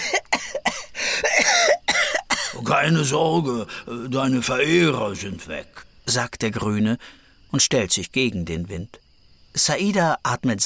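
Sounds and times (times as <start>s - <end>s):
person coughing after waking: 0.0s - 2.6s
speech: 2.7s - 10.6s.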